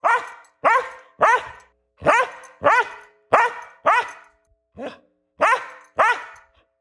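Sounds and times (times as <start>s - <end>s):
dog barking loudly: 0.0s - 6.6s.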